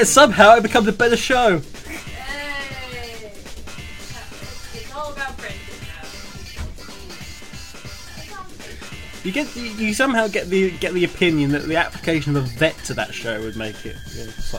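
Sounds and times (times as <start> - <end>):
speech: 0.0 - 2.1, 9.2 - 14.5
several people imitating sheep bleating: 1.8 - 9.2.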